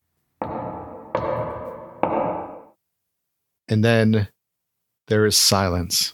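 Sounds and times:
heavy knocks on a massive rotting old oak door: 0:00.4 - 0:02.7
speech: 0:03.7 - 0:04.3, 0:05.1 - 0:06.1.

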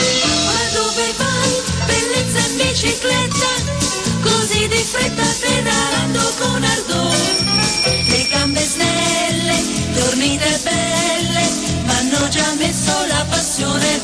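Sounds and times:
old-fashioned bouncy 1930s song with oom-pah beat: 0:00.2 - 0:14.0
bicycle bells ringing and tinkling: 0:07.1 - 0:09.6.

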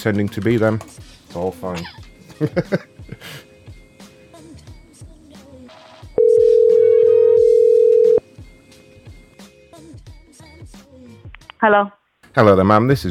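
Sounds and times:
speech: 0:00.0 - 0:03.5, 0:11.6 - 0:13.0
laughter: 0:01.8 - 0:03.4
telephone dial tone while a call is placed: 0:06.2 - 0:08.2.

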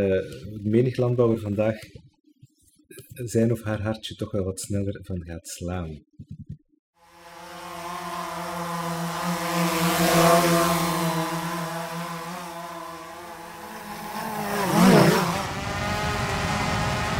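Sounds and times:
speech: 0:00.0 - 0:02.0, 0:03.2 - 0:06.3
drone motors buzzing in flight: 0:07.0 - 0:17.1.

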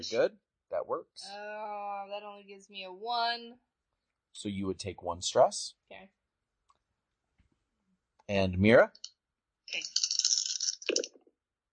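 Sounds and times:
speech: 0:00.0 - 0:03.7, 0:04.4 - 0:06.2, 0:08.3 - 0:09.1, 0:09.7 - 0:10.0
dice rolling on a hard surface: 0:09.8 - 0:11.1.

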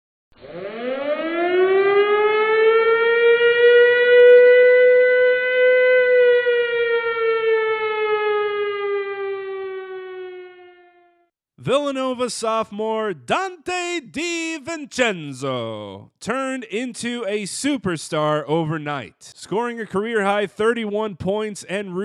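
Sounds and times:
siren winding up and wailing: 0:00.4 - 0:11.3
speech: 0:11.7 - 0:22.0.

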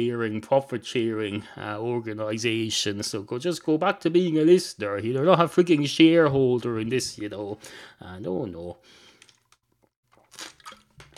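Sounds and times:
speech: 0:00.0 - 0:09.0
short liquid gulps: 0:10.1 - 0:11.1
sipping and slurping water: 0:10.1 - 0:11.1.

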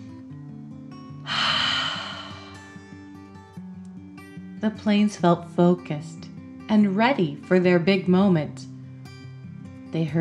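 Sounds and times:
quiet music: 0:00.0 - 0:10.1
deep breath in and out as a calming breathing exercise: 0:01.3 - 0:02.8
speech: 0:04.6 - 0:08.7, 0:09.9 - 0:10.1.

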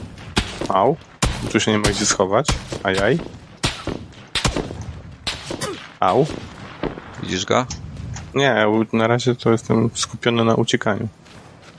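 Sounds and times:
gunshots: 0:00.0 - 0:08.1
speech: 0:00.7 - 0:03.4, 0:06.0 - 0:06.5, 0:07.2 - 0:07.8, 0:08.4 - 0:11.2.

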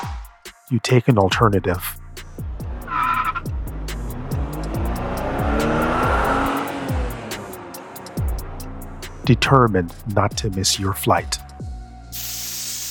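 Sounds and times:
speech: 0:00.7 - 0:01.9, 0:09.3 - 0:11.5
car engine rumble: 0:01.4 - 0:10.2
car tires skidding with a loud squeal: 0:02.6 - 0:08.2.

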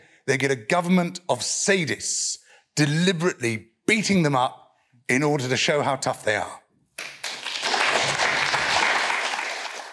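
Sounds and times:
speech: 0:00.3 - 0:07.1
audience applause: 0:07.0 - 0:09.9.

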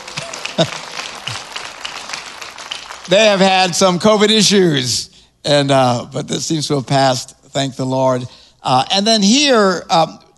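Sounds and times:
laughter: 0:00.0 - 0:01.6
faint cheers: 0:00.0 - 0:01.7
roomful of people applauding: 0:00.0 - 0:03.8
speech: 0:00.6 - 0:01.4, 0:03.1 - 0:10.2.

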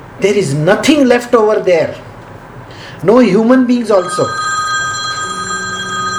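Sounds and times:
speech: 0:00.2 - 0:02.1, 0:03.0 - 0:04.5
telephone ringing with an electronic tone: 0:03.8 - 0:06.1.

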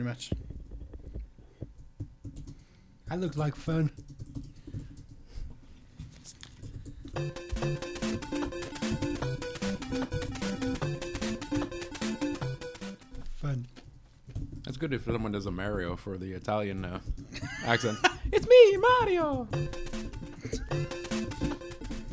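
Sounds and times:
speech: 0:00.0 - 0:00.5, 0:03.1 - 0:04.1, 0:07.2 - 0:08.4, 0:14.8 - 0:20.0
typing on a computer keyboard: 0:01.8 - 0:02.7, 0:03.3 - 0:05.2, 0:06.4 - 0:13.2, 0:18.8 - 0:22.1.

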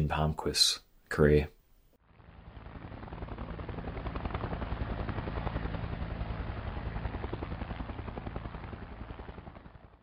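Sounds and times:
speech: 0:00.1 - 0:01.6
Sea Sprite helicopter rotor chopping: 0:02.0 - 0:10.0.

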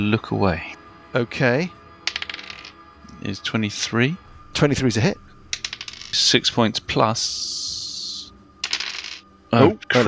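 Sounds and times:
speech: 0:00.0 - 0:01.8, 0:03.2 - 0:05.2, 0:06.1 - 0:07.6, 0:09.5 - 0:10.0
dice rattling across a hard tabletop: 0:02.1 - 0:02.8, 0:05.5 - 0:06.3, 0:08.6 - 0:09.2.

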